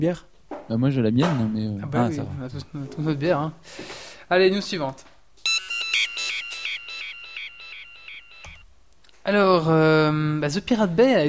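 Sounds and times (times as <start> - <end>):
speech: 0.0 - 5.1, 9.3 - 11.2
detector electronic alarm beeping, set off by touch: 5.4 - 8.7.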